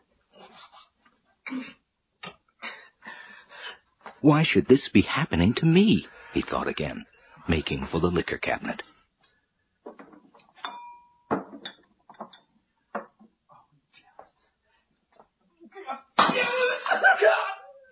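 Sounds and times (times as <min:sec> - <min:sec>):
speech: 0:01.5 - 0:01.8, 0:04.2 - 0:09.0
small clinks and creaks: 0:09.9 - 0:13.4
glass breaking and shattering with a jangling spray of shards: 0:16.2 - 0:17.1.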